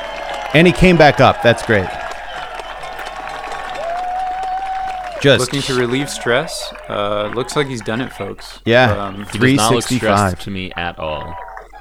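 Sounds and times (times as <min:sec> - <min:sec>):
long whistle: 0:00.0 - 0:07.4
big crowd cheering and clapping: 0:00.0 - 0:11.8
laughter: 0:00.0 - 0:11.8
speech: 0:00.5 - 0:02.0, 0:05.2 - 0:11.4.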